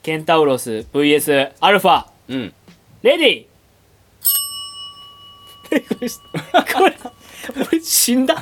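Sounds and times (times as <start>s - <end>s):
speech: 0.0s - 3.5s, 5.7s - 8.4s
hand bell struck in place of a boxing gong: 4.2s - 8.4s.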